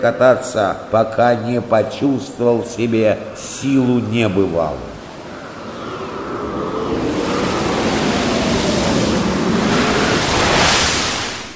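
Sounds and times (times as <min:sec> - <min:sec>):
speech: 0:00.0 - 0:04.9
sea waves surging: 0:02.6 - 0:11.5.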